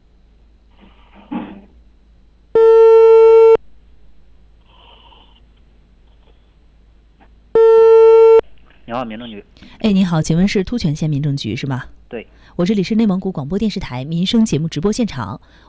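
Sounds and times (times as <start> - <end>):
telephone ringback tone while call connects: 2.6 - 3.6, 7.6 - 8.4
speech: 8.9 - 15.6.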